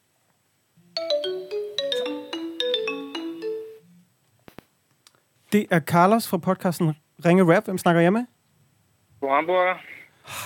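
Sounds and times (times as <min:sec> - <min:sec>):
phone ringing with a melodic ringtone for an incoming call: 0:01.0 - 0:03.9
speech: 0:05.5 - 0:08.3, 0:09.3 - 0:10.4.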